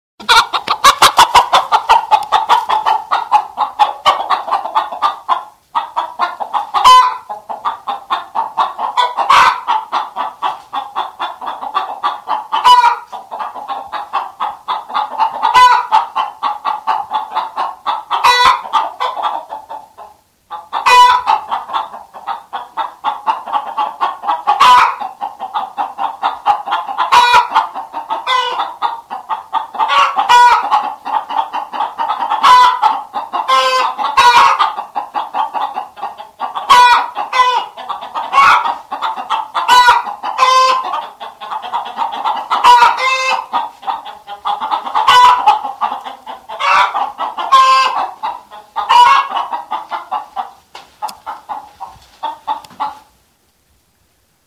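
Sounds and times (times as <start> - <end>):
chickens in a henhouse: 0.2 - 54.4.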